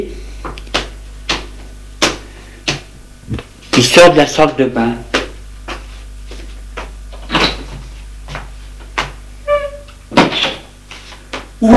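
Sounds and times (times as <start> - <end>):
speech: 3.3 - 5.1
door creaking: 9.4 - 10.7.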